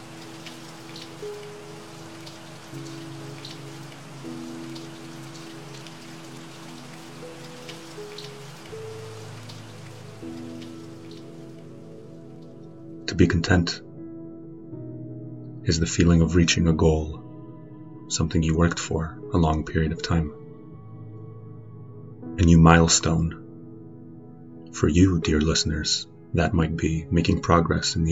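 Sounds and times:
light rain pattering on a window: 0.0s - 12.8s
soft sustained musical drone: 0.0s - 28.0s
speech: 13.2s - 13.9s, 15.7s - 17.2s, 18.1s - 20.4s, 22.4s - 23.4s, 24.8s - 28.0s.

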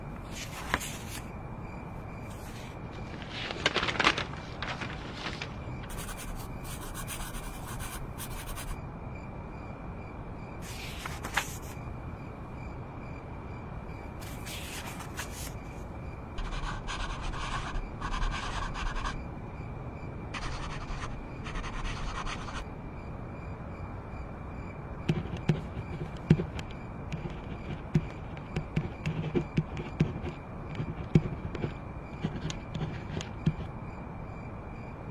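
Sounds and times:
low room hum: 0.0s - 35.0s
paper rustling and page turns: 0.2s - 1.3s, 2.3s - 8.8s, 10.6s - 11.8s, 14.2s - 15.6s
pen scratching on paper in a dorm: 5.9s - 8.8s, 16.4s - 19.2s, 20.4s - 22.6s, 25.1s - 33.7s.

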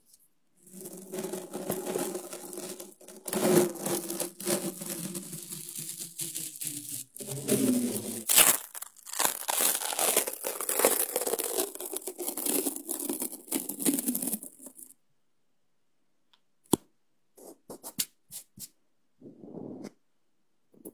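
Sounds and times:
very sticky tape pulled off in a rasping rip: 1.6s - 14.0s.

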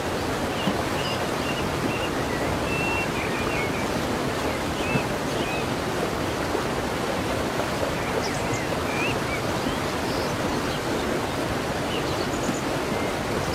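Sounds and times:
calm waterfall: 0.0s - 13.5s
birds singing: 0.5s - 5.7s, 7.9s - 13.5s.

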